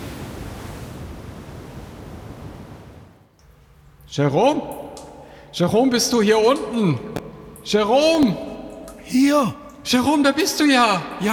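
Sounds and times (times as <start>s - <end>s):
strong wind on open water: 0.0s - 3.2s
waves on open water around a pedal boat: 0.0s - 3.2s
speech: 4.1s - 4.8s, 5.5s - 8.5s, 9.1s - 11.3s
person calling out loudly: 9.0s - 9.7s.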